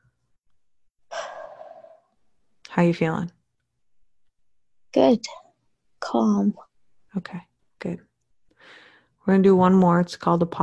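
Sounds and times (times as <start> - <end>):
person inhaling and exhaling during a calming anxiety-release exercise: 1.1 - 2.2
speech: 2.8 - 3.4, 5.0 - 5.4, 6.1 - 8.1, 8.7 - 10.6.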